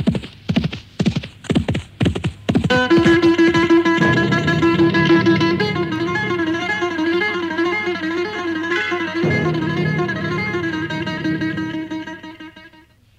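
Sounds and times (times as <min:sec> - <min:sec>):
horse hooves clip-clopping: 0:00.0 - 0:02.7
sustained music: 0:02.7 - 0:12.8.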